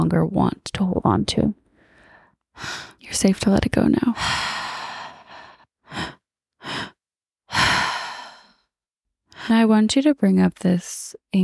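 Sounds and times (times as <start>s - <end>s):
speech: 0.0s - 1.6s, 2.6s - 4.5s, 9.5s - 11.4s
slow deliberate breathing during guided breathwork: 1.7s - 3.0s, 4.2s - 8.7s.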